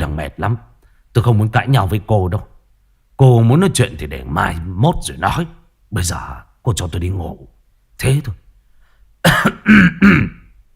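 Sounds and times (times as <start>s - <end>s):
speech: 0.0s - 2.5s, 3.2s - 8.4s, 9.2s - 10.4s
man clearing his throat: 9.2s - 10.6s.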